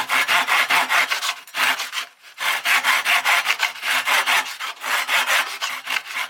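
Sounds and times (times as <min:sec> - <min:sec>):
saw cutting wood: 0:00.0 - 0:06.2.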